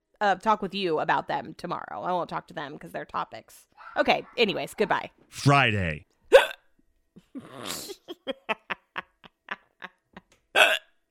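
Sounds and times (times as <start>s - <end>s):
speech: 0.2s - 6.1s, 7.4s - 8.5s
hiccups: 6.3s - 6.7s, 10.6s - 11.0s.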